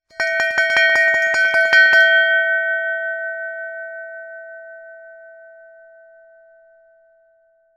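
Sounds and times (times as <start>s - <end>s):
brass bell: 0.1s - 3.5s.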